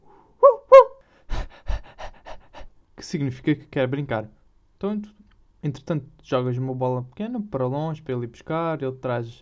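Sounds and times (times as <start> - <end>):
voice imitating excited high-pitched dog yips: 0.4 - 1.0
voice imitating dog with breathy panting huffs: 1.0 - 2.8
speech: 3.0 - 9.4.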